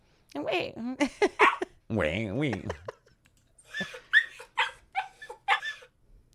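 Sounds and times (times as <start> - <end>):
speech: 0.3 - 2.9
excited dog yipping and barking: 1.4 - 1.6, 3.8 - 5.9
laughter: 2.4 - 4.7
excited dog whining: 3.8 - 6.0.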